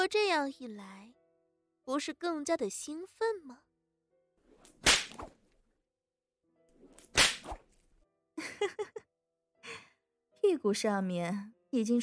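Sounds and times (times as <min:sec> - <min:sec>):
speech: 0:00.0 - 0:01.2, 0:01.9 - 0:03.7, 0:08.4 - 0:09.0, 0:10.4 - 0:12.0
whip lashing: 0:04.6 - 0:05.4, 0:07.0 - 0:07.7.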